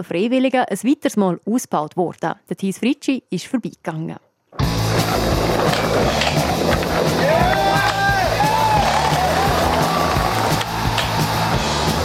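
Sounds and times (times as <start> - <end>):
speech: 0.0 - 4.3
skateboard wheels rumbling: 4.6 - 12.0
hundreds of people murmuring and calling out at a skatepark festival in Switzerland: 6.9 - 11.6.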